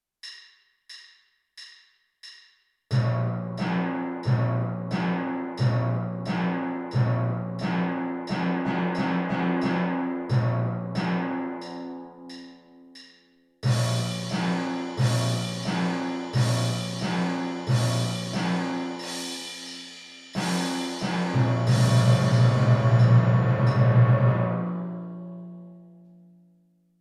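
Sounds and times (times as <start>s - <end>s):
timpani: 2.9s - 12.6s, 13.6s - 25.8s
crash cymbals: 13.6s - 24.5s.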